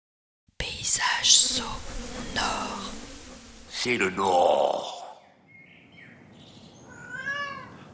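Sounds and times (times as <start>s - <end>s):
faint hiss: 0.6s - 7.9s
speech: 0.9s - 2.9s, 3.8s - 5.0s
cat in heat yowling: 6.8s - 7.9s.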